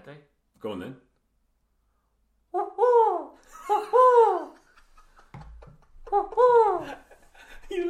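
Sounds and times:
speech: 0.1 - 1.1
person imitating owl hoots: 2.5 - 4.4
laughter: 3.4 - 7.8.

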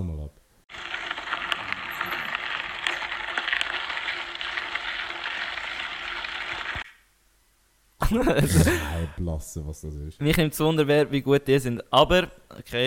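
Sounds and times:
mountain bike riding over gravel: 0.7 - 6.8
laughter: 8.0 - 9.1
speech: 8.1 - 12.8.

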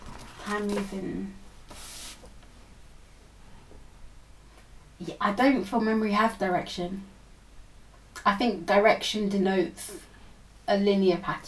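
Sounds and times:
sheet of paper rustling and crinkling as a man folds it: 0.0 - 2.5
speech: 0.5 - 1.4, 5.0 - 7.1, 8.2 - 10.1, 10.7 - 11.4.

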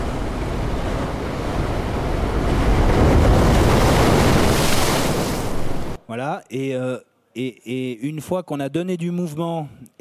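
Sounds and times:
ocean wave surf rushing: 0.0 - 6.0
speech: 6.3 - 10.0.

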